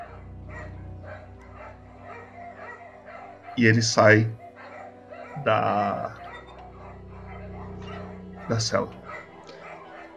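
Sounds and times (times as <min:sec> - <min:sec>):
dog barking: 0:00.0 - 0:03.6, 0:04.4 - 0:10.1
speech: 0:03.6 - 0:04.4, 0:05.4 - 0:06.2, 0:08.5 - 0:09.0.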